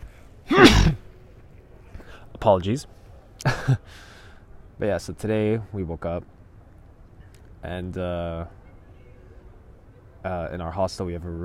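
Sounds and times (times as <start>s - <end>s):
person sneezing: 0.5s - 1.0s
speech: 2.4s - 4.1s, 4.8s - 6.4s, 7.6s - 8.6s, 10.2s - 11.4s.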